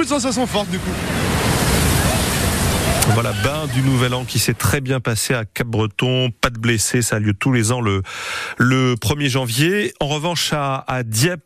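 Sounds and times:
speech: 0:00.0 - 0:01.6, 0:03.1 - 0:11.4
ocean waves crashing onto the beach at Cap-Breton: 0:00.0 - 0:04.8.

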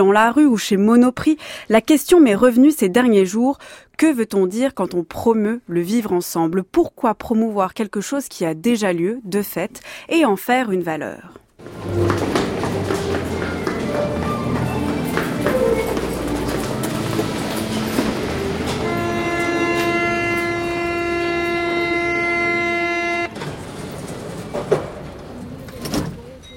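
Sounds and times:
speech: 0:00.0 - 0:12.4
metro train rumbling and clattering along the rails: 0:11.6 - 0:25.8.

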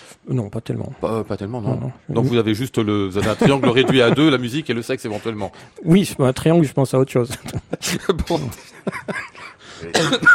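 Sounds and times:
speech: 0:00.3 - 0:10.3
laughter: 0:03.2 - 0:04.6, 0:07.3 - 0:10.3
man coughing: 0:09.7 - 0:10.3.

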